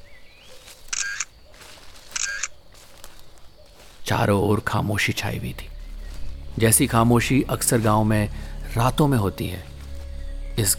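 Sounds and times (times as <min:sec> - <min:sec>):
camera shutter clicking: 0:00.9 - 0:01.3, 0:02.1 - 0:02.6
speech: 0:04.1 - 0:05.7, 0:06.6 - 0:09.7, 0:10.6 - 0:10.7.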